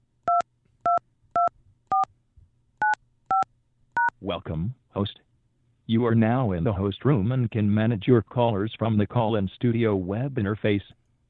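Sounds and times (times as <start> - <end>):
faint low hum: 0.0 - 11.2
telephone keypad tones entering a PIN: 2.8 - 3.4
speech: 4.2 - 5.3, 5.9 - 11.0.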